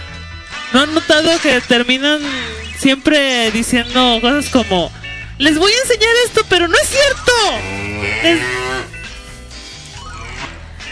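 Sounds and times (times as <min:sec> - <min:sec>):
speech: 0:00.7 - 0:08.6
cow mooing: 0:07.5 - 0:09.0.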